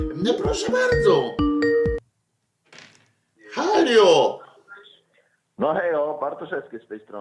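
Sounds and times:
speech: 0:00.0 - 0:01.4, 0:05.6 - 0:07.1
incoming phone call electronic ringtone: 0:01.0 - 0:02.0.

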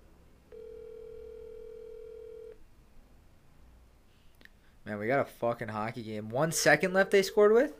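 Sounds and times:
faint hiss: 0:00.0 - 0:07.7
electronic phone ringing tone on a phone line: 0:00.5 - 0:02.6
speech: 0:04.9 - 0:07.7.

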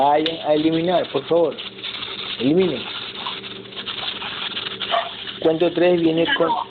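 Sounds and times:
speech: 0:00.0 - 0:01.8, 0:02.4 - 0:03.0, 0:05.4 - 0:06.6
steady hum: 0:00.0 - 0:06.6
dogs in the house: 0:04.8 - 0:05.3.

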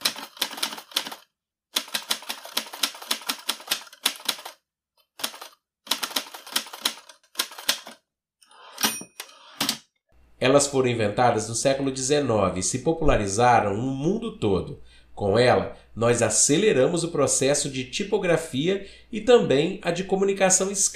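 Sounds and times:
typewriter keys clattering: 0:00.0 - 0:01.2, 0:01.8 - 0:04.6, 0:05.2 - 0:08.0
speech: 0:10.4 - 0:20.9.

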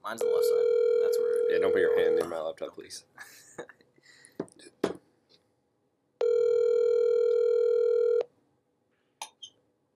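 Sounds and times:
speech: 0:00.1 - 0:03.8
outgoing phone call ringback tone: 0:00.2 - 0:02.3, 0:06.2 - 0:08.2.

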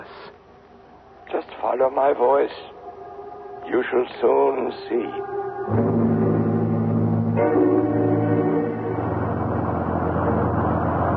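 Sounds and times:
speech: 0:01.3 - 0:02.8, 0:03.7 - 0:05.9
driverless bus engine drone: 0:05.7 - 0:11.1.

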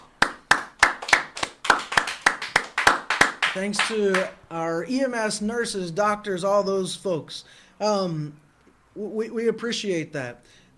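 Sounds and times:
group clapping hands in a steady unified rhythm: 0:00.0 - 0:04.3
speech: 0:03.6 - 0:08.4, 0:09.0 - 0:10.7.

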